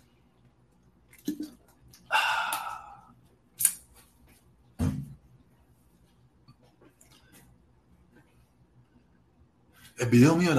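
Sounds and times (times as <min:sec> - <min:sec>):
soft mouth noises: 0:01.1 - 0:03.8
person swallowing a drink of water: 0:01.2 - 0:03.1
speech: 0:01.3 - 0:01.6, 0:10.0 - 0:10.5.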